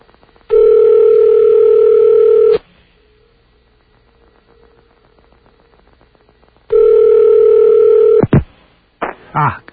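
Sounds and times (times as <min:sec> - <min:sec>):
telephone ringback tone over a phone line: 0:00.5 - 0:02.6, 0:06.7 - 0:08.2.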